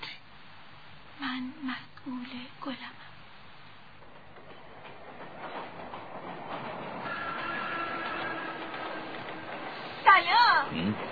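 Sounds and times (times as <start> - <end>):
speech: 1.4 - 3.1
train rumbling and clattering past on rails: 1.5 - 11.1
train wheels screeching: 4.5 - 11.1.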